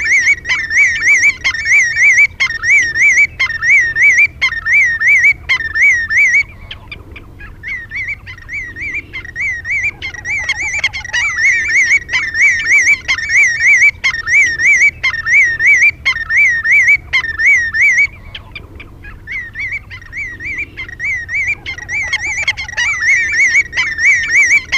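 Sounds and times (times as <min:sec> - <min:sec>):
steady low hum: 0:00.0 - 0:24.7
willet giving loud rolling wavering calls: 0:00.0 - 0:24.7.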